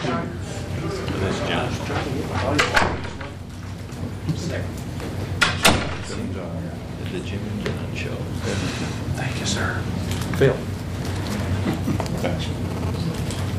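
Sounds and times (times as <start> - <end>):
steady murmur of indistinct voices: 0.0 - 13.5
back door opening and closing: 2.6 - 3.4, 5.4 - 6.1
speech: 7.1 - 10.7.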